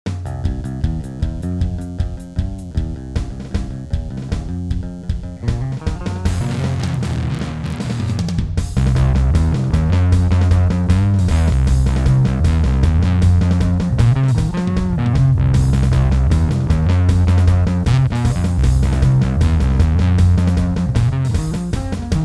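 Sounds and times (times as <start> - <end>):
synth through analog filter guitar pedal: 0.3 - 22.2.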